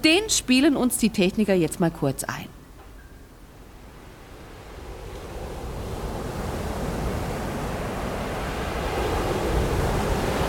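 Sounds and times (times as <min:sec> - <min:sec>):
speech: 0:00.0 - 0:02.6
strong gusty damp-cold wind roaring through tree branches including conifers: 0:03.6 - 0:10.4.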